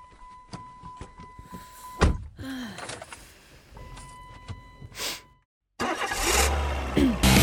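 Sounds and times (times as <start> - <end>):
car engine cranking and starting: 5.8 - 7.4.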